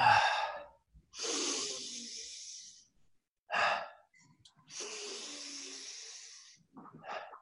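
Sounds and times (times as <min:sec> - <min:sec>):
deep inhaling and relaxed exhaling in a breathing exercise: 0:00.0 - 0:03.0, 0:04.7 - 0:07.3.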